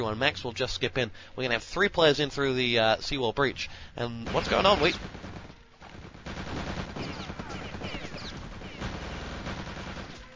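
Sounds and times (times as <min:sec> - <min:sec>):
speech: 0:00.0 - 0:05.4
MP40 submachine gun fire in a World War II video game: 0:04.3 - 0:10.3.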